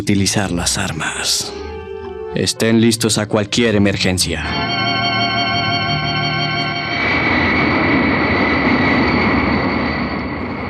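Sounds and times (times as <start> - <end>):
speech: 0.0 - 1.6, 2.3 - 5.4
jet airliner engines roaring during descent: 4.5 - 10.6.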